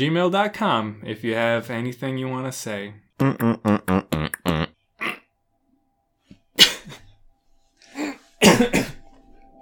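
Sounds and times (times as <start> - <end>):
speech: 0.0 - 4.0
person coughing harshly with a throaty rasp: 6.6 - 7.0, 8.0 - 9.1.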